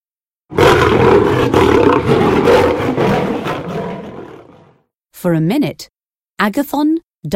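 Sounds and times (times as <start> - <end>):
lion roaring: 0.5 - 4.8
speech: 5.2 - 7.3.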